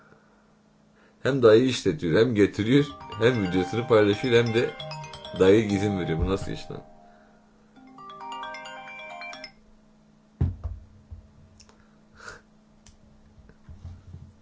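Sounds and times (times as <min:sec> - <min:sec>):
speech: 0:01.2 - 0:06.9
mobile phone ringtone for an incoming call from an unknown number: 0:02.7 - 0:09.6.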